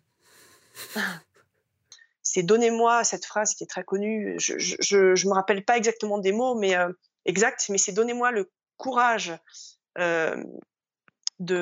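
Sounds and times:
wheezy heavy breathing of someone catching their breath: 0:00.2 - 0:01.4
speech: 0:01.0 - 0:01.3, 0:02.3 - 0:10.7, 0:11.4 - 0:11.6.

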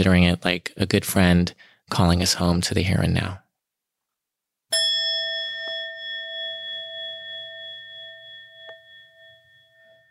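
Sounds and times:
speech: 0:00.0 - 0:03.4
meditation bell struck and ringing: 0:04.7 - 0:10.0.

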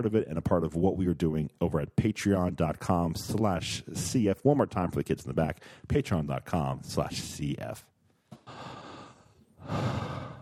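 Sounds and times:
speech: 0:00.0 - 0:07.9
heavy breathing into the microphone: 0:08.3 - 0:10.4.

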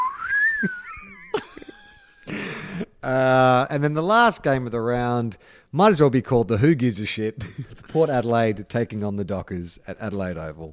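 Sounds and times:
descending slide whistle: 0:00.0 - 0:00.8
speech: 0:00.6 - 0:00.8, 0:03.0 - 0:10.7.

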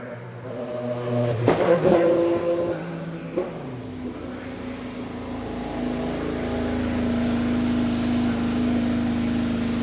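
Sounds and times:
Indy race car engine screaming and slowing hard: 0:00.6 - 0:09.8
Indy race car engine idling: 0:03.0 - 0:09.8.

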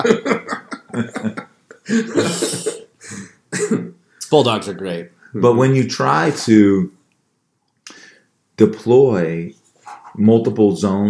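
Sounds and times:
speech: 0:00.0 - 0:00.3, 0:01.9 - 0:02.4, 0:04.3 - 0:07.0, 0:08.6 - 0:09.6, 0:10.2 - 0:11.0
laughter: 0:00.0 - 0:02.9
bulldog coughing and hacking in a house: 0:03.5 - 0:03.9.

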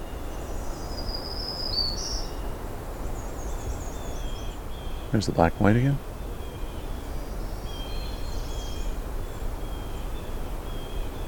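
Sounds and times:
distant American robins singing: 0:00.0 - 0:11.2
steady hiss of outdoor noise: 0:00.0 - 0:11.2
speech: 0:05.1 - 0:06.1.

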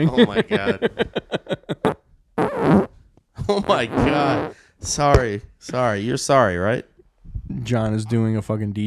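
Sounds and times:
speech: 0:00.0 - 0:01.6, 0:03.5 - 0:06.9, 0:07.6 - 0:08.8
laughter: 0:00.0 - 0:01.9
fart: 0:02.4 - 0:02.9, 0:03.9 - 0:04.5.

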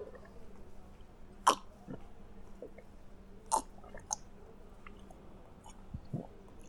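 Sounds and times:
low steady hum: 0:00.0 - 0:06.6
person gulping down a glass of water: 0:01.4 - 0:02.9, 0:03.5 - 0:04.2, 0:04.8 - 0:06.6.

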